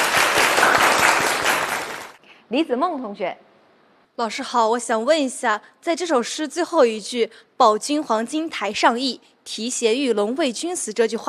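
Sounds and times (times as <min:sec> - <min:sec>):
classroom applause as students clap for a classmate's recitation: 0:00.0 - 0:02.2
speech: 0:02.5 - 0:03.5, 0:04.2 - 0:11.2.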